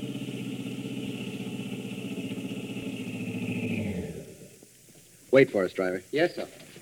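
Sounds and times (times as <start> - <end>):
car engine idling: 0.0 - 4.7
speech: 5.3 - 6.6.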